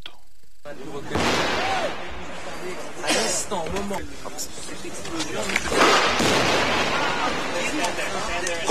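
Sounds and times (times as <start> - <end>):
voices talking: 0.6 - 8.6
explosions during police raid on building: 1.1 - 2.1, 5.7 - 7.7.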